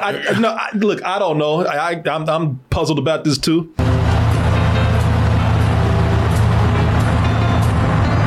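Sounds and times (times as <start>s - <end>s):
speech: 0.0s - 3.8s
execution van engine rumbling while driving: 3.8s - 8.2s
road noise: 3.8s - 8.2s.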